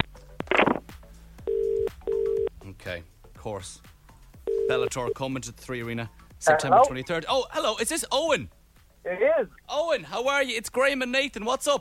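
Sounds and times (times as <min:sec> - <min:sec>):
telephone ringing tones: 0:01.5 - 0:02.5, 0:04.5 - 0:05.2
speech: 0:02.8 - 0:03.9, 0:04.7 - 0:11.7.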